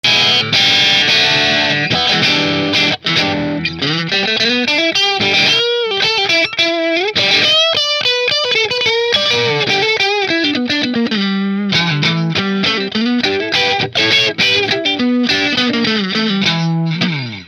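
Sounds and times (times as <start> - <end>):
P90 pickup electric guitar through a Marshall amplifier: 0.0 - 17.4.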